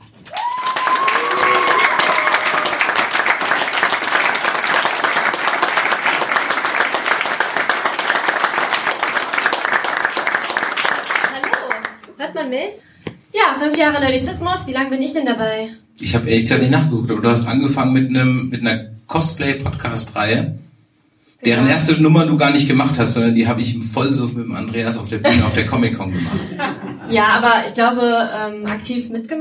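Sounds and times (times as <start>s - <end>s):
large audience clapping: 0.0s - 12.2s
audience whistles and cheers: 0.2s - 3.0s
speech: 13.6s - 20.7s, 21.4s - 29.3s
laughter: 25.2s - 27.3s.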